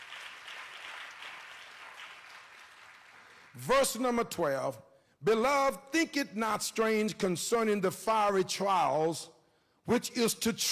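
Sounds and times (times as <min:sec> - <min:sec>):
congregation clapping hands: 0:00.0 - 0:04.4
speech: 0:03.6 - 0:10.7.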